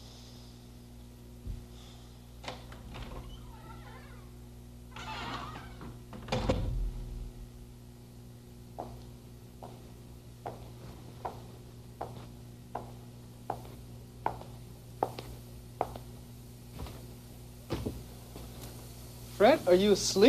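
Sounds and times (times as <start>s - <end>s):
low constant room hum: 0.0s - 20.2s
door creaking and thudding open and shut: 2.4s - 7.4s
steady footsteps: 10.5s - 16.1s, 16.7s - 18.8s
speech: 19.4s - 20.2s.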